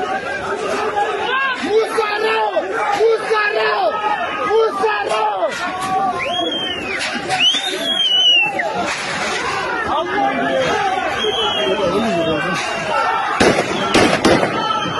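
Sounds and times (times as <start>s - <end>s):
crowd shouting and chatter: 0.0s - 14.9s
warning gunshots fired by a mob at police guarding an airport gate in Russia: 13.3s - 14.9s.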